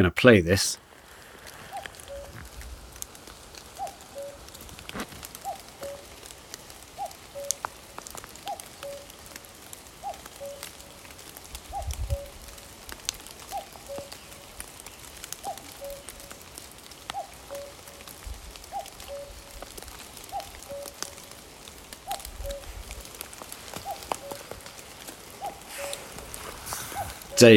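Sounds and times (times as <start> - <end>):
speech: 0.0 - 0.8
steady rainfall pattering: 0.1 - 27.5
cuckoo calling a two-note song: 1.7 - 2.4, 3.8 - 4.5, 5.4 - 6.2, 7.0 - 7.7, 8.4 - 9.2, 10.0 - 10.8, 11.6 - 12.6, 13.4 - 14.5, 15.3 - 16.4, 17.1 - 23.0, 23.6 - 27.5.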